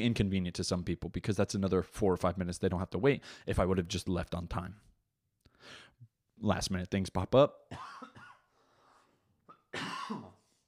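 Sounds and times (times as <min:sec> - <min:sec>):
speech: 0:00.0 - 0:04.9, 0:06.4 - 0:08.2, 0:09.7 - 0:10.3
person coughing with spit caught in the throat: 0:07.7 - 0:08.5, 0:09.5 - 0:10.6.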